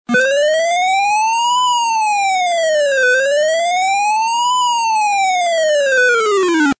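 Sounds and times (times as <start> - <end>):
alarm ringtone: 0.1 - 6.7.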